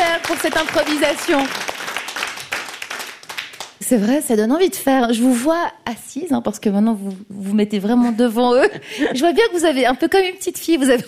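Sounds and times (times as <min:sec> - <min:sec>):
audience applauding performers after an improvisation: 0:00.0 - 0:03.8
speech: 0:00.3 - 0:01.8, 0:03.9 - 0:11.0.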